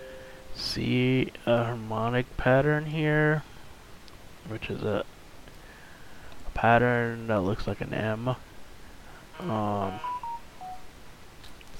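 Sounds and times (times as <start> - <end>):
steady hiss: 0.0 - 11.7
speech: 0.6 - 3.5, 4.4 - 5.1, 6.6 - 8.5, 9.4 - 10.1
phone DTMF beeps: 9.9 - 10.9.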